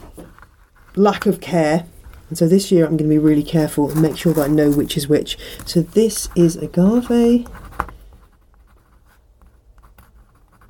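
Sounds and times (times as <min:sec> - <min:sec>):
speech: 0:01.0 - 0:07.6
pen scratching on a seed pot label: 0:05.7 - 0:10.6.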